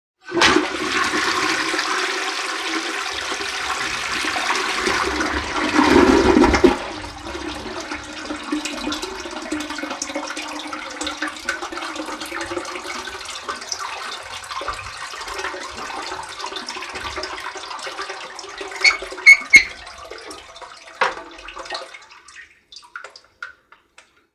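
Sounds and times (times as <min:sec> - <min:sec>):
old household toilet flushing: 0:00.2 - 0:23.2.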